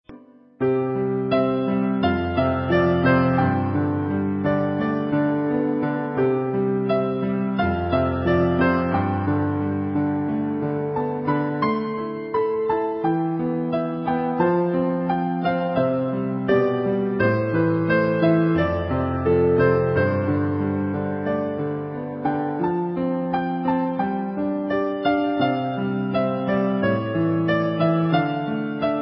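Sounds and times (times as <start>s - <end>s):
piano music: 0.0s - 29.0s.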